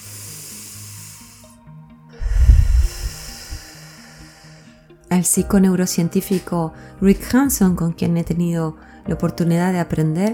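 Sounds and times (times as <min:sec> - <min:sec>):
deep breathing in and out: 0:00.0 - 0:05.0
speech: 0:05.1 - 0:10.3.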